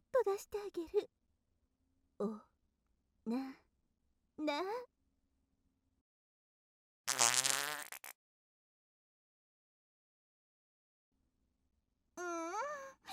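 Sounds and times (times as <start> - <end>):
speech: 0.3 - 1.2, 2.2 - 2.5, 3.2 - 3.6, 4.4 - 4.9, 12.2 - 12.7
loud buzzy farts: 7.1 - 8.2.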